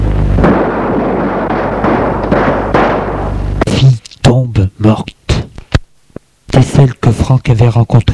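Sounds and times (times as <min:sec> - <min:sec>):
continuous roar: 0:00.0 - 0:05.6
revolver gunshots: 0:00.4 - 0:03.7
speech: 0:06.6 - 0:08.1.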